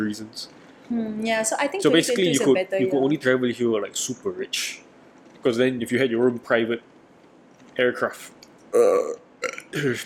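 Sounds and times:
speech: 0:00.0 - 0:06.9, 0:07.8 - 0:10.0
person burping: 0:08.7 - 0:10.0.

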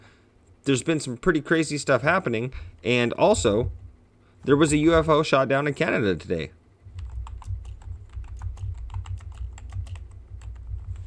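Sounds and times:
low steady hum: 0:00.0 - 0:11.0
speech: 0:00.7 - 0:03.8, 0:04.4 - 0:06.6
typing on a computer keyboard: 0:06.9 - 0:11.0.

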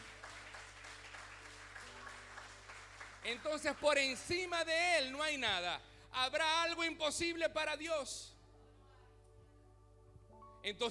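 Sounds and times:
audience applause: 0:00.0 - 0:04.1
speech: 0:03.2 - 0:08.4, 0:10.6 - 0:10.8.

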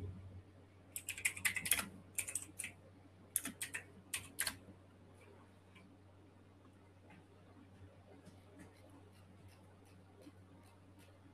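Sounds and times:
faint low hum: 0:00.0 - 0:11.3
typing a message on a computer keyboard: 0:01.0 - 0:02.8, 0:03.4 - 0:04.6.

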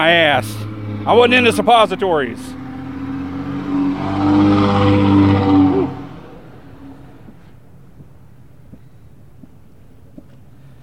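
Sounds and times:
speech: 0:00.0 - 0:02.6
loud car engine revving past: 0:00.0 - 0:07.5.

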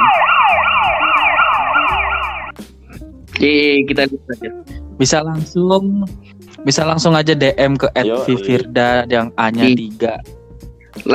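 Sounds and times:
siren wailing: 0:00.0 - 0:02.5
speech: 0:03.4 - 0:10.4, 0:11.0 - 0:11.1.

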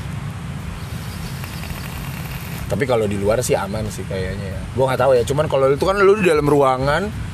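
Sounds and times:
breathy vape exhale blown close to the microphone: 0:00.8 - 0:02.6
speech: 0:02.7 - 0:07.3.

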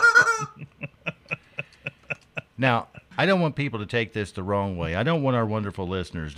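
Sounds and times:
chicken clucking: 0:00.0 - 0:00.6
laughter: 0:00.3 - 0:03.2
speech: 0:02.6 - 0:06.3.

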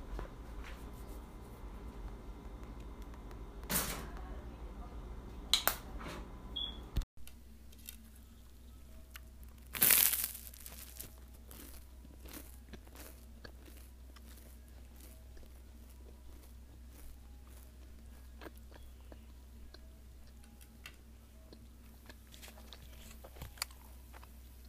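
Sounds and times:
low hum: 0:00.1 - 0:24.6
person eating a peanut butter sandwich and leftovers: 0:09.1 - 0:24.6.

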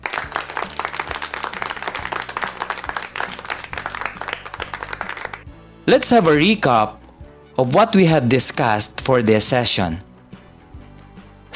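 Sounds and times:
crowd applauding: 0:00.0 - 0:05.5
speech: 0:05.9 - 0:07.0, 0:07.6 - 0:10.1.

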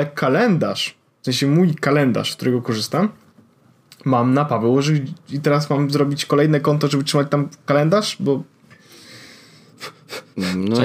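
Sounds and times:
speech: 0:00.0 - 0:03.2, 0:04.0 - 0:08.6, 0:09.8 - 0:10.8
rapid heavy breathing: 0:08.7 - 0:10.7.

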